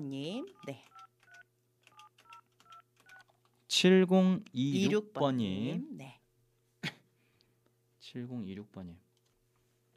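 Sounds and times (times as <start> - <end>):
speech: 0.0 - 1.0, 3.7 - 6.2, 8.1 - 9.0
telephone keypad dialing tones, short two-note beeps: 0.5 - 3.4.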